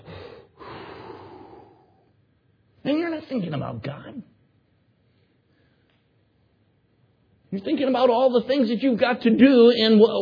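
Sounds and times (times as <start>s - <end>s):
person imitating a slow deep breath while aiming a gun: 0.0s - 2.1s
speech: 2.8s - 4.4s, 7.5s - 10.2s.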